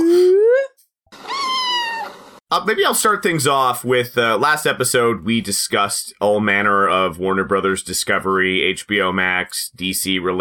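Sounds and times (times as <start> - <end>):
cat meow sound effect made with a slide whistle: 1.2 - 2.2
speech: 2.6 - 10.3.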